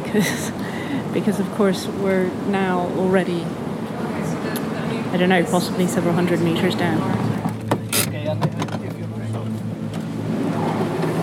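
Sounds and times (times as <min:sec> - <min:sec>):
car engine humming in an inclined underground tunnel: 0:00.0 - 0:11.2
speech: 0:00.1 - 0:03.7, 0:05.1 - 0:07.2
sharp rattles and clunks: 0:07.3 - 0:10.1.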